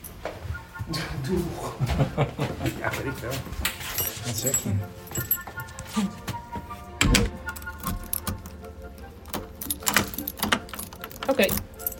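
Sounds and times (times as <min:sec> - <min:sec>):
laughter: 0:00.9 - 0:03.6
speech: 0:00.9 - 0:05.4, 0:06.0 - 0:06.2, 0:11.4 - 0:11.6
house keys jangling: 0:03.7 - 0:06.0, 0:07.2 - 0:11.9.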